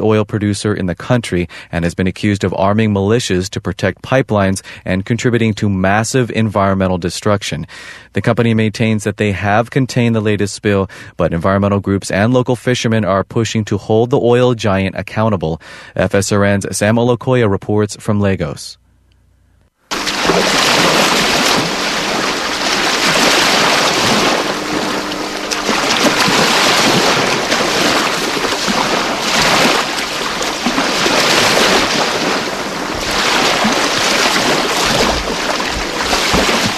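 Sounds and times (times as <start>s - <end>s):
speech: 0.0s - 18.8s, 20.0s - 20.9s
Atlantic Ocean waves crashing against the Nigerian coastline: 19.9s - 36.7s.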